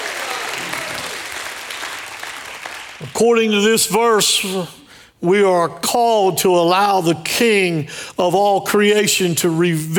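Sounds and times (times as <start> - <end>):
church congregation clapping hands in praise: 0.0 - 3.5
speech: 3.0 - 9.9.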